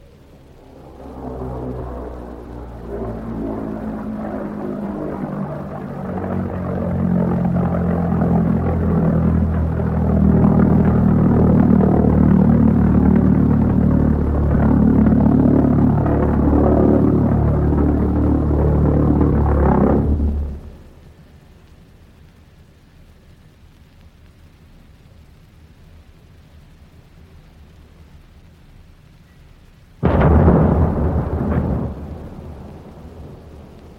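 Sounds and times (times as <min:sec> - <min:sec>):
wartime flying bomb pulse-jet engine drone overhead: 0:00.0 - 0:22.0, 0:30.0 - 0:33.9.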